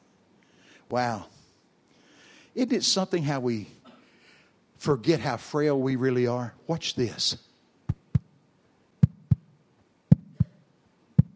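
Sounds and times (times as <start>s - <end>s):
speech: 0.9s - 1.4s, 2.6s - 3.8s, 4.8s - 7.5s
lub-dub heartbeat: 7.9s - 8.3s, 9.0s - 9.5s, 10.1s - 10.6s, 11.2s - 11.3s.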